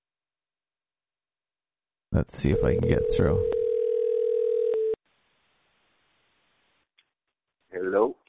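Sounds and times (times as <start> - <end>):
speech: 2.2 - 3.6
telephone dial tone while placing a call: 3.0 - 5.0.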